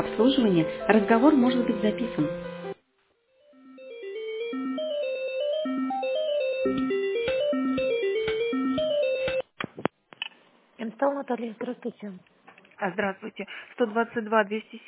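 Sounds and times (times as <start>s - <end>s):
speech: 0.2s - 2.5s, 11.2s - 14.8s
electronic hold melody on a telephone line during call transfer: 1.0s - 9.5s
rhythmic beat in telephone hold music: 3.8s - 9.5s.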